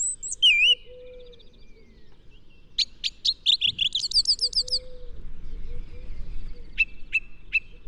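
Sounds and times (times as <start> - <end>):
background noise: 0.0 - 7.8
song thrush singing: 0.0 - 7.8.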